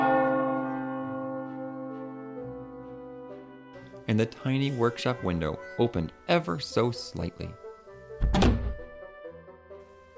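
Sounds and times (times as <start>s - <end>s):
village clock-tower bell striking at midnight: 0.0s - 3.5s
speech: 4.1s - 7.6s.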